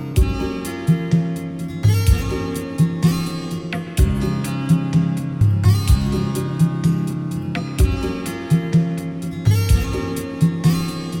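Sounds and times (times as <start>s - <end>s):
chilled funk music tuned to 432 Hz: 0.1s - 11.1s.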